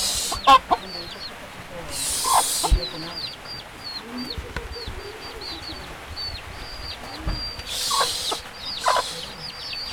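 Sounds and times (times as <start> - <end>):
loud hissing burst: 0.0 - 0.6, 1.9 - 3.0, 7.7 - 9.9
chicken chicks peeping on a rainy day: 0.0 - 9.9
speech: 0.5 - 1.4, 2.7 - 3.4.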